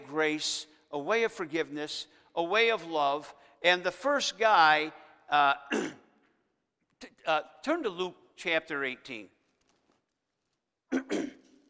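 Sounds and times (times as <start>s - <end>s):
speech: 0.1s - 6.0s, 7.0s - 9.4s
man preaching a sermon clearing throat: 5.7s - 6.1s, 10.9s - 11.6s.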